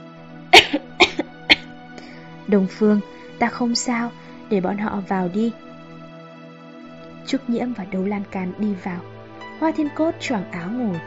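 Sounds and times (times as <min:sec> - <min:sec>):
dry coughing of a seriously ill person in a room: 0:00.5 - 0:01.7
speech: 0:02.5 - 0:05.6, 0:07.3 - 0:11.0.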